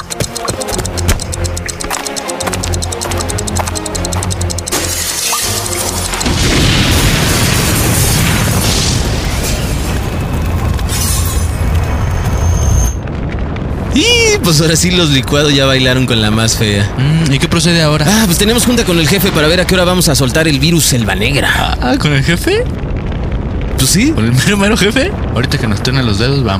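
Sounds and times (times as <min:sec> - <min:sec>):
rhythmic mechanical clicking and ratcheting: 0:00.0 - 0:06.6
powerful explosion sound effect: 0:06.2 - 0:26.5
speech: 0:14.5 - 0:22.9, 0:23.8 - 0:26.5.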